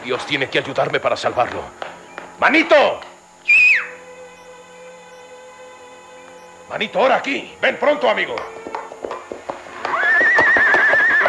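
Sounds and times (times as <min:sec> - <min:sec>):
speech: 0:00.0 - 0:03.6, 0:06.7 - 0:08.6
white colt hooves clip-clopping: 0:00.0 - 0:11.2
white colt whinnying among trees: 0:02.8 - 0:04.6, 0:07.5 - 0:11.2.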